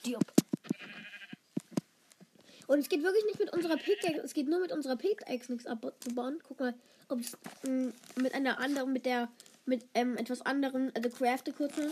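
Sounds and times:
speech: 0.0s - 0.5s, 2.7s - 11.8s
faint noise: 0.0s - 11.8s
sheep bleating in a video game: 0.7s - 1.4s, 3.6s - 4.2s.

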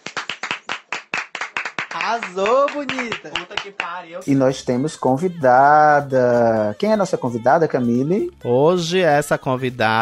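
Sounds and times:
hands clapping: 0.0s - 4.1s
speech: 2.0s - 10.0s.

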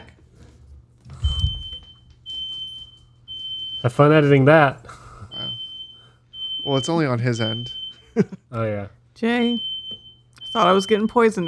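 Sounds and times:
fire alarm beeping: 1.2s - 4.4s, 5.3s - 8.2s, 9.2s - 11.4s
speech: 3.8s - 5.0s, 6.6s - 9.7s, 10.5s - 11.4s.

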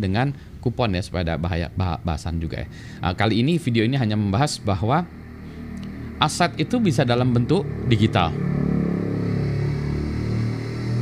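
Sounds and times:
speech: 0.0s - 5.2s, 6.2s - 8.5s
motorcycle engine droning outside: 2.5s - 11.0s.

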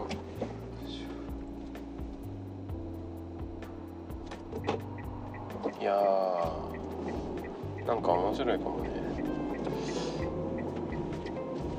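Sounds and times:
car engine rumble while driving: 0.0s - 11.7s
faint regularly spaced ticking clicks: 3.6s - 11.4s
speech: 5.8s - 7.2s, 7.9s - 9.0s.

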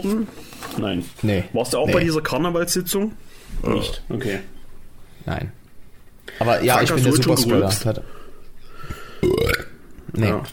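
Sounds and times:
speech: 0.0s - 4.6s, 5.2s - 5.6s, 6.3s - 8.2s, 10.2s - 10.5s
burp with a rising croaky tone: 9.2s - 9.8s.

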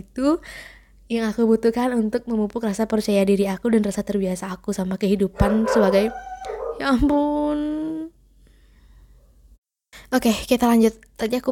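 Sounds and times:
speech: 0.0s - 7.8s, 10.1s - 11.5s
dog barking from the next room: 5.4s - 7.0s.

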